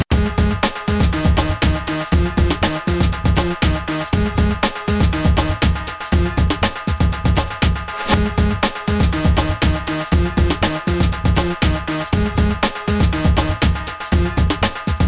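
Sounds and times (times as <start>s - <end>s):
synth bed: 0.1s - 14.9s.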